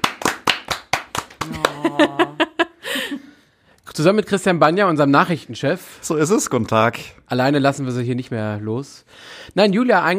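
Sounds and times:
hands clapping: 0:00.0 - 0:02.4
people vocalizing: 0:01.4 - 0:02.8
people laughing: 0:01.4 - 0:03.1
speech: 0:04.0 - 0:10.1.

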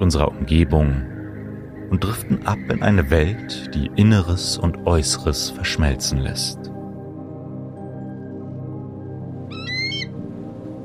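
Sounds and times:
speech: 0:00.0 - 0:01.1, 0:01.9 - 0:06.7
distant eagle call: 0:09.4 - 0:10.5.

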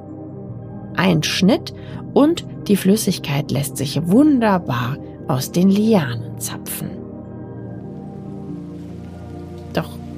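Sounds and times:
speech: 0:01.0 - 0:07.0, 0:09.8 - 0:10.0
heavy rain pouring onto a rainforest canopy: 0:07.8 - 0:10.1.

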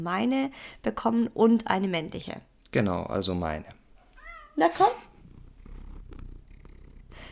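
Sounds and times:
speech: 0:00.0 - 0:03.8, 0:04.6 - 0:05.1
cat purring: 0:04.0 - 0:07.2.

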